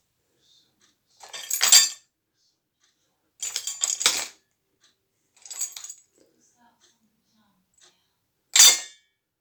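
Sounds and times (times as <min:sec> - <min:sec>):
keys falling: 0:01.3 - 0:02.0, 0:03.5 - 0:04.4, 0:05.4 - 0:06.1, 0:08.6 - 0:08.9.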